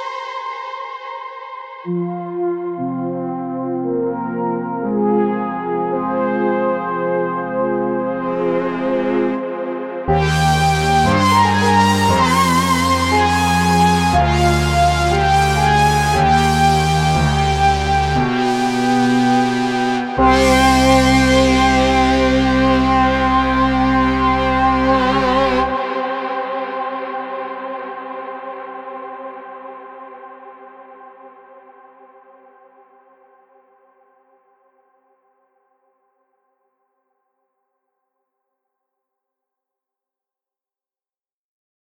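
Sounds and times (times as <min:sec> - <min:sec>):
gloomy brass music: 0:01.9 - 0:28.5.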